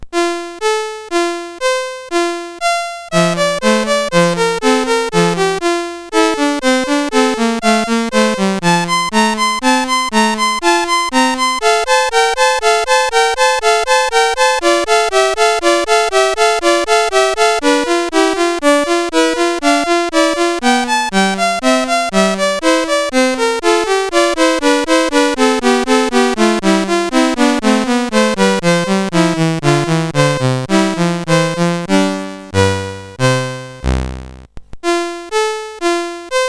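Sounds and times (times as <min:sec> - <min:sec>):
chiptune piece on a CSG8580R5 sound chip: 0:00.0 - 0:36.4.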